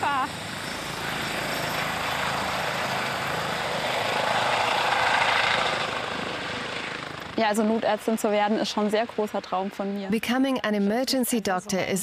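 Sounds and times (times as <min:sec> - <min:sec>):
emergency doctor's helicopter flying past: 0:00.0 - 0:10.3
speech: 0:07.4 - 0:12.0.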